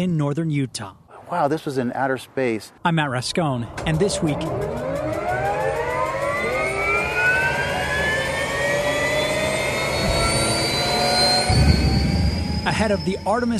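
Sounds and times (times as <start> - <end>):
speech: 0.0 - 5.0, 12.7 - 13.5
news photographers' helicopter turbine whine: 3.2 - 13.5
news photographers' helicopter heavy engine roar: 3.6 - 13.5.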